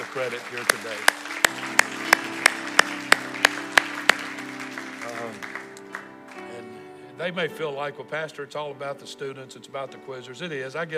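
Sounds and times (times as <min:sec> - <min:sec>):
audience clapping in a steady even rhythm in a large room: 0:00.0 - 0:06.6
speech: 0:00.2 - 0:01.9, 0:07.2 - 0:10.9.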